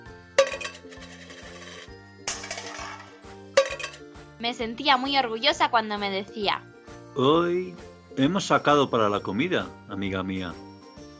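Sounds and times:
soft steady musical background: 0:00.0 - 0:11.1
coins dropping into a tin can: 0:00.4 - 0:04.0
speech: 0:04.4 - 0:10.6.

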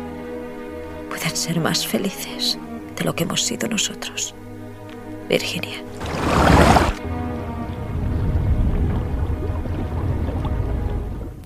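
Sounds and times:
speech: 0:01.2 - 0:04.5, 0:05.3 - 0:06.6
steady churning rush of river water: 0:05.9 - 0:11.3
person plunging into a stony river with a loud splash: 0:06.0 - 0:07.1.

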